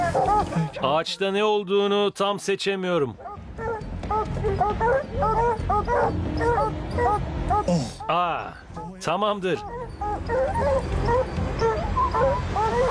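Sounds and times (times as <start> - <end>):
speech: 0.6 - 3.3, 4.3 - 12.9
pack of hunting dogs baying at a treed lion: 3.2 - 12.9.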